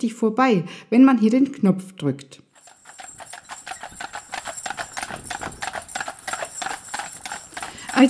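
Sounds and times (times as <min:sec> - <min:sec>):
speech: 0:00.0 - 0:02.5
hooves clip-clopping from a horse-drawn cart: 0:02.6 - 0:08.0.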